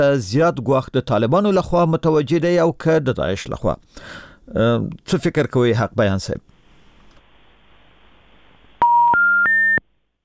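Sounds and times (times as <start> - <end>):
speech: 0.0 - 6.5
telephone disconnected-line signal beeps: 8.8 - 9.8.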